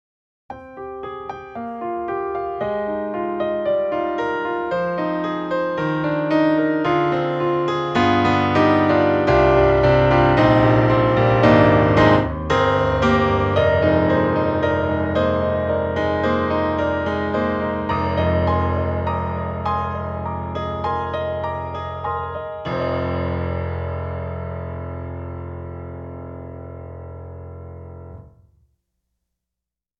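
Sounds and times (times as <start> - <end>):
rosewood grand piano playing: 0.5 - 28.4.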